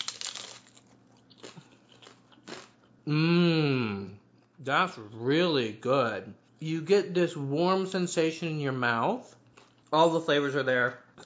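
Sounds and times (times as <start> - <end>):
crunchy bite into an appetizer of chip, tomato and avocado puree: 0.0 - 2.9
speech: 3.1 - 3.5, 4.6 - 11.0.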